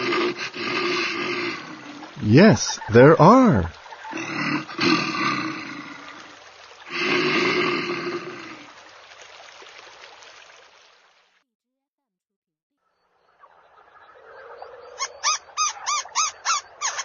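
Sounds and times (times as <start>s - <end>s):
bear at the zoo roaring: 0.0s - 8.7s
speech: 2.2s - 3.8s.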